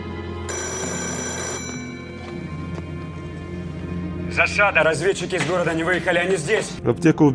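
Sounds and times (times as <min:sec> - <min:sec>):
old-style telephone bell ringing: 0:00.5 - 0:02.2
speech: 0:04.4 - 0:07.3.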